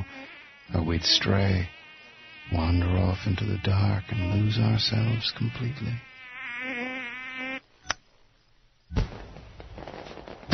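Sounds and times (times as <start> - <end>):
speech: 0.9 - 1.8, 2.5 - 6.9
firework crack and burst trailing into crackling: 8.9 - 10.5.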